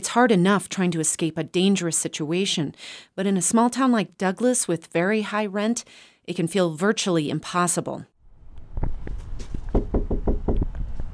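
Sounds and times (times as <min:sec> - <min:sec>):
speech: 0:00.0 - 0:08.1
firm knocking on an apartment door: 0:09.7 - 0:10.7.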